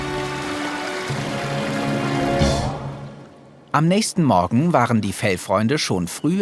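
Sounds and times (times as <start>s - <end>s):
water running from a dropped garden hose: 0.0s - 2.8s
speech: 3.8s - 6.4s.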